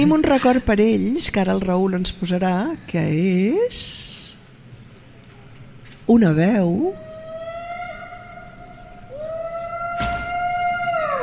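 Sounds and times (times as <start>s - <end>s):
speech: 0.0s - 4.2s, 6.1s - 7.1s
Tyrannosaurus rex movie roar: 7.0s - 11.2s.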